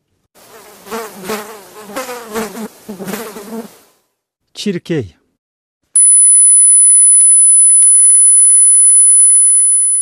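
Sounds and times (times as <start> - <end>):
housefly buzzing: 0.4 - 3.9
speech: 2.9 - 3.2, 4.6 - 5.2.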